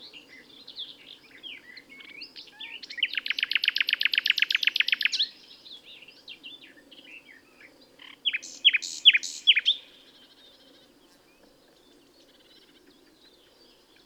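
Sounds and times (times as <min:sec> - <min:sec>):
Common nightingale singing: 0:00.0 - 0:14.0.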